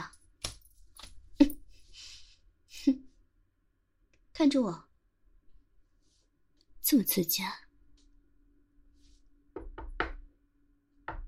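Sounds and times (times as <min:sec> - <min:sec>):
speech: 0:04.4 - 0:04.9, 0:06.9 - 0:07.6
knocking on a door: 0:09.5 - 0:10.3, 0:11.0 - 0:11.2.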